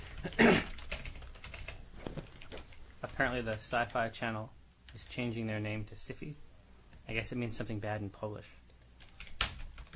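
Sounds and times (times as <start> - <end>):
typing on a computer keyboard: 0.2 - 4.0, 9.0 - 9.9
speech: 3.2 - 6.5, 7.1 - 8.6.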